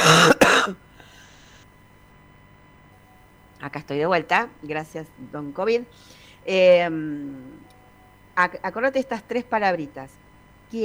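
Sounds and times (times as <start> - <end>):
person coughing: 0.0 - 0.8
speech: 3.7 - 7.7, 8.4 - 10.8.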